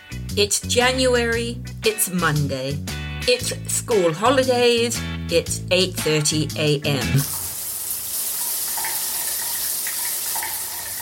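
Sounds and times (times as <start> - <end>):
speech: 0.4 - 7.4
shower water running: 7.1 - 11.0
splashy taps: 8.5 - 11.0.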